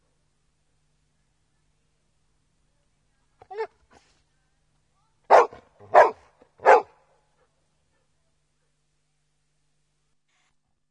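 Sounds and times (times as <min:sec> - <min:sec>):
big dog barking: 0:05.3 - 0:07.0.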